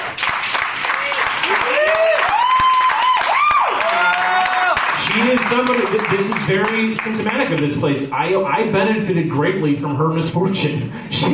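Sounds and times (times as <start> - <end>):
crowd applauding: 0.0 - 7.7
crowd whooping and cheering: 0.8 - 5.8
speech: 5.5 - 11.3.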